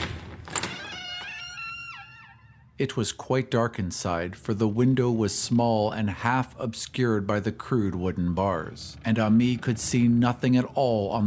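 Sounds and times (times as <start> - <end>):
key unlocking a low white wooden door: 0.0 - 1.8
long strained hinge creak of a low wooden door: 0.0 - 2.8, 7.7 - 11.2
speech: 2.8 - 11.2.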